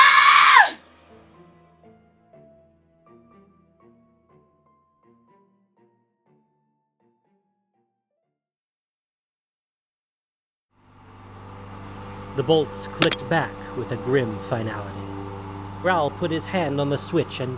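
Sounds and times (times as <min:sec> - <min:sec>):
woman screaming in pain: 0:00.0 - 0:00.8
speech: 0:12.4 - 0:15.1, 0:15.8 - 0:17.5.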